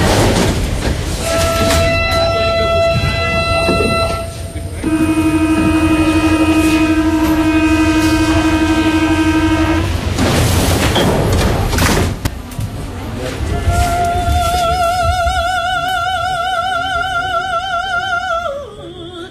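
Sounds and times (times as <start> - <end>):
metro train rumble in an underground station: 0.0 - 19.2
metro train electric motors whining in an underground station: 1.2 - 10.1.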